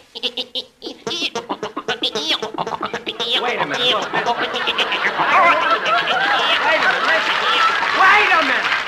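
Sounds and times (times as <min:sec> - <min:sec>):
person imitating an electric organ with warbling nasal tones: 0:00.0 - 0:05.5
laughter: 0:00.9 - 0:08.7
speech: 0:03.4 - 0:06.4.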